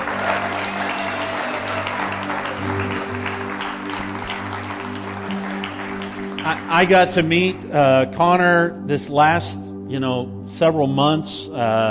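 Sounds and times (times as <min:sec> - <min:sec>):
audience applauding: 0:00.0 - 0:07.4
speech: 0:06.5 - 0:11.8.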